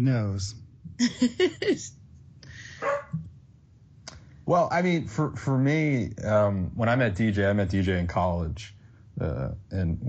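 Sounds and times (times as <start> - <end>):
speech: 0.0 - 2.0, 4.5 - 10.0
dog barking: 2.8 - 3.2.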